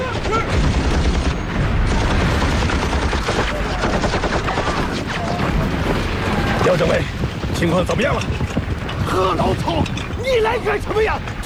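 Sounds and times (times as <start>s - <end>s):
machine gun fire in a combat scene: 0.0s - 7.7s
speech: 6.8s - 11.4s.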